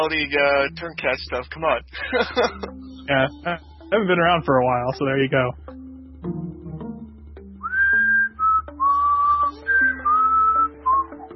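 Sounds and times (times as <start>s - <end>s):
speech: 0.0s - 6.4s
laughter: 1.9s - 3.6s
loud human whistling of a short melody: 7.6s - 11.3s.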